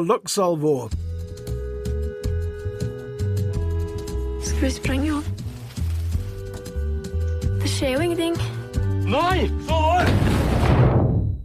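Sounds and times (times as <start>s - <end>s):
tense film music with swooping tones: 0.9s - 11.4s
loud explosion of an explosive: 10.0s - 11.4s.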